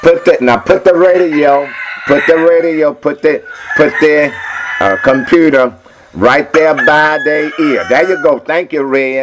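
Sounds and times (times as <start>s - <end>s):
speech: 0.0s - 9.2s
rooster crowing: 1.0s - 2.7s, 3.4s - 5.5s, 6.5s - 8.4s.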